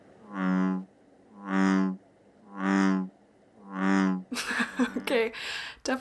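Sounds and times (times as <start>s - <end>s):
bullfrog deep resonant croak: 0.2s - 4.3s
laughter: 4.4s - 5.9s
speech: 5.2s - 5.9s.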